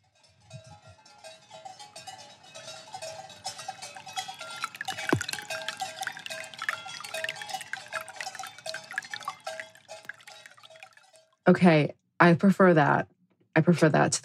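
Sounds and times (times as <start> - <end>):
faint bell-like clinks: 0.1 - 11.3
water flowing through a big log used as an arm basin: 2.9 - 11.3
speech: 11.5 - 14.2.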